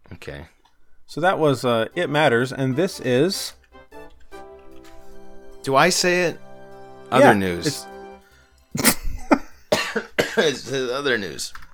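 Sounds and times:
speech: 0:00.2 - 0:03.6, 0:05.6 - 0:06.4, 0:07.1 - 0:07.9, 0:08.7 - 0:08.9, 0:10.4 - 0:11.6
harsh coughs: 0:08.8 - 0:10.6.

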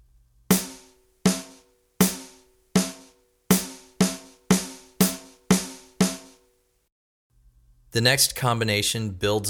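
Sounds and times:
resonant drum hits in eighth notes and eighth-note triplets: 0:00.5 - 0:06.4
speech: 0:07.9 - 0:09.4.

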